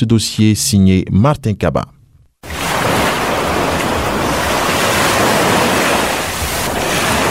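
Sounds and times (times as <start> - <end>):
speech: 0.0 - 2.6
ocean waves breaking on the shore: 2.4 - 7.2
wind rushing across the microphone: 2.5 - 7.2.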